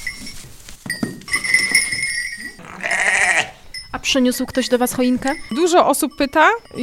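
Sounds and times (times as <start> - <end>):
clinking and rustling of a goat pen: 0.0 - 6.8
ewe bleating: 2.6 - 3.6
speech: 4.0 - 6.8.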